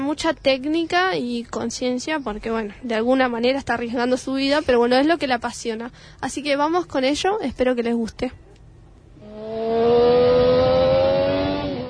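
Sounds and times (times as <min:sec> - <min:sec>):
speech: 0:00.1 - 0:08.4
motorcycle engine revving with a high steady whine: 0:09.2 - 0:11.8.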